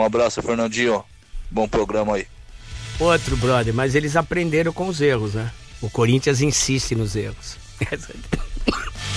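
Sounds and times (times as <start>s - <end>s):
speech: 0.0s - 2.4s, 3.0s - 8.8s
person coughing from pharyngitis: 7.8s - 9.0s.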